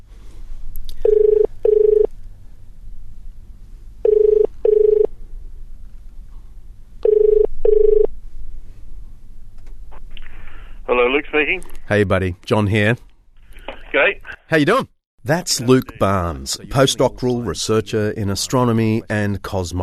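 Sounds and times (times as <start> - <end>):
low hum: 0.0 - 19.8
telephone ringing tone: 1.0 - 2.1, 4.0 - 5.1, 7.0 - 8.1
speech: 11.3 - 13.1, 14.5 - 19.8.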